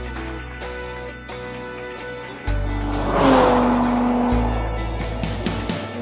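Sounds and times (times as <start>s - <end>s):
sports car engine revving hard under acceleration with gear changes: 2.1s - 6.0s.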